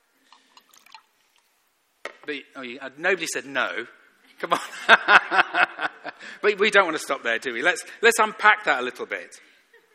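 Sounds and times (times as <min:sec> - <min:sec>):
water trickling into a glass: 0:00.2 - 0:01.5
speech: 0:02.2 - 0:09.5
laughter: 0:04.4 - 0:06.2.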